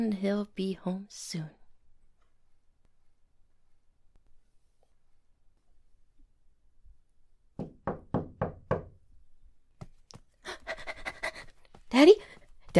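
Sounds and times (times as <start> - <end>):
speech: 0.2 - 1.6, 12.0 - 12.7
knocking on a door: 7.5 - 9.0.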